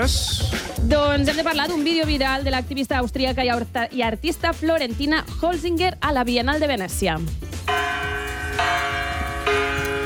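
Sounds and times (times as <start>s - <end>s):
speech: 0.0s - 7.9s
bronze bell in an art installation at the Venice Biennale struck from inside by a person: 7.7s - 10.0s.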